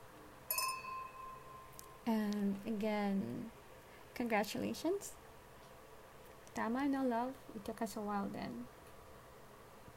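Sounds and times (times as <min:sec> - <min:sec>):
glasses clinking in a toast: 0:00.5 - 0:01.8
speech: 0:02.1 - 0:03.6, 0:04.2 - 0:05.2, 0:06.6 - 0:08.8.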